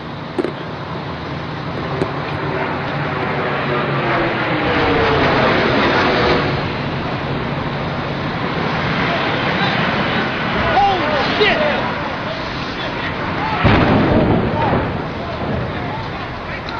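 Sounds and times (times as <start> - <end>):
low-flying jet airplane passing overhead in Manhattan: 0.0 - 16.7.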